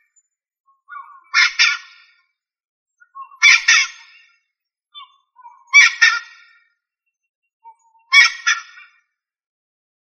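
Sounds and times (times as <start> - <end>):
rail harsh grating calls: 0.9 - 2.1, 3.2 - 4.3, 5.0 - 6.6, 8.1 - 9.0.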